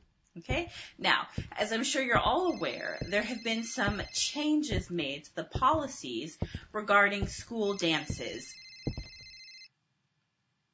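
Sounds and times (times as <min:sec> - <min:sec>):
speech: 0:00.4 - 0:08.6
mobile phone ringing in a classroom: 0:02.4 - 0:04.9, 0:07.8 - 0:09.7.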